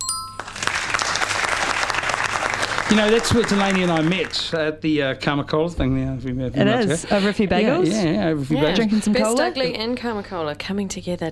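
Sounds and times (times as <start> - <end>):
round of applause from many hands: 0.4 - 4.6
speech: 2.9 - 11.3.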